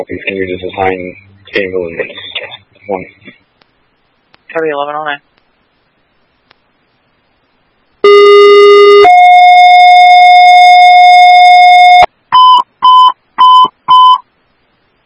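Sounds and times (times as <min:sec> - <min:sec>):
speech: 0:00.0 - 0:03.4, 0:04.5 - 0:05.3
dispatch paging tones for medical alarm: 0:08.0 - 0:14.2.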